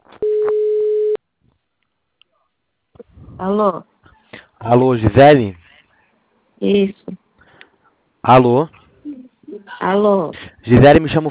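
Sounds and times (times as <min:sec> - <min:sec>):
telephone ringback tone: 0:00.2 - 0:01.2
speech: 0:03.4 - 0:03.9, 0:04.6 - 0:05.6, 0:06.6 - 0:07.1, 0:08.2 - 0:08.8, 0:09.8 - 0:11.2.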